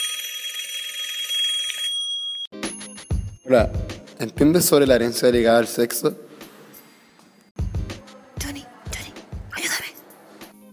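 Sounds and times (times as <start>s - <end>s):
telephone ringing with a high electronic trill: 0.0s - 3.0s
speech: 3.5s - 6.3s.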